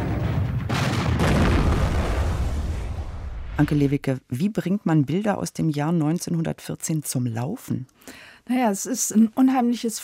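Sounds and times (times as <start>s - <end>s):
bullets and shells flying from a trench in battle: 0.0s - 3.6s
speech: 3.6s - 10.0s.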